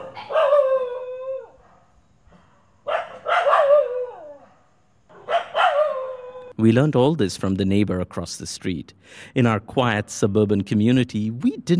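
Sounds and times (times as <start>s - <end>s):
several dogs howling in chorus: 0.0s - 1.7s, 3.2s - 4.5s, 5.2s - 6.6s
several dogs yipping and barking: 0.0s - 1.8s, 2.9s - 6.5s
speech: 6.6s - 11.7s.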